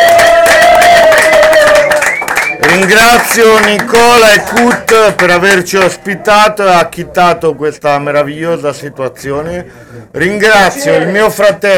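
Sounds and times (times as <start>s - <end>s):
audience cheering at a live music event: 0.0s - 4.8s
speech: 2.8s - 11.7s.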